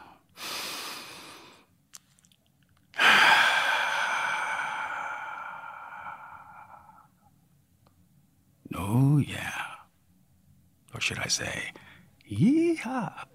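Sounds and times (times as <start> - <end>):
deep breath: 0.0 - 1.7, 3.0 - 7.4, 11.8 - 12.1
speech: 11.0 - 13.3.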